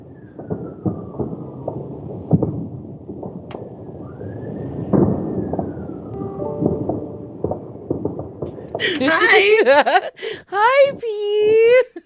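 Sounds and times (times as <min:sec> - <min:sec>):
faint police siren wailing: 0:00.0 - 0:01.6, 0:03.8 - 0:07.6
New Year fireworks crackling and booming outside the window: 0:00.0 - 0:12.0
laughter: 0:08.8 - 0:10.6, 0:11.8 - 0:12.0
speech: 0:08.8 - 0:12.0.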